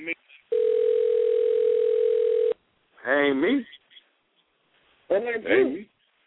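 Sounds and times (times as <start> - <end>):
telephone dial tone: 0.5 - 2.6
speech: 3.2 - 3.8, 5.1 - 5.9.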